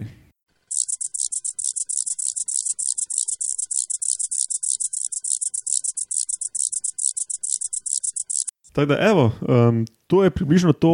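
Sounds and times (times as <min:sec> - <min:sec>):
red-winged grasshopper crackling wings in flight: 0:00.6 - 0:08.5
speech: 0:08.8 - 0:10.9.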